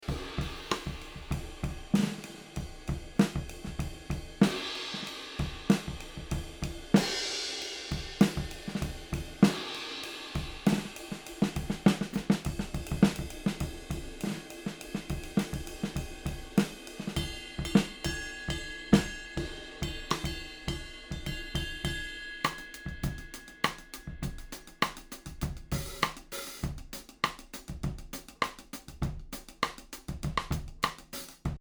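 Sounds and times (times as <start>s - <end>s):
drums recorded with overhead ribbon microphone: 0.0s - 31.5s.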